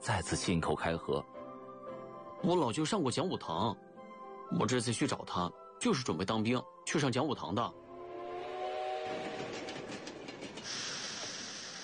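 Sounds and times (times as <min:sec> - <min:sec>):
speech: 0:00.0 - 0:01.4, 0:02.4 - 0:03.9, 0:04.5 - 0:07.8
train rumbling and clattering along the tracks: 0:07.7 - 0:11.8
train horn blast: 0:07.8 - 0:10.3.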